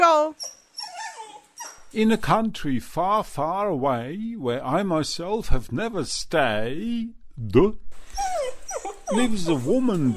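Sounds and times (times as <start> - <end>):
speech: 0.0 - 0.5, 1.9 - 10.1
Basenji dog yelping: 0.3 - 1.9, 8.1 - 10.1.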